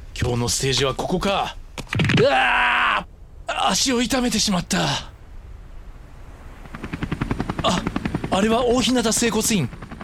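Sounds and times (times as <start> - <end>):
speech: 0.2 - 5.1, 7.6 - 9.8
helicopter passing with engine roar and rotor chop: 6.4 - 10.0.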